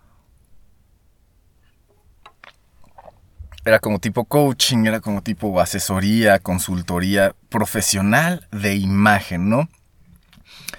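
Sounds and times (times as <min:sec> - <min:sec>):
person sipping water with mouth clicks and a swallow: 0:02.3 - 0:03.7
speech: 0:03.6 - 0:09.8.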